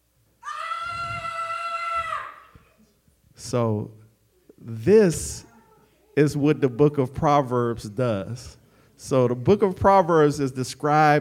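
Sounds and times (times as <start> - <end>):
person yelling: 0.4 - 2.5
speech: 3.5 - 4.0, 4.6 - 5.5, 6.2 - 11.1.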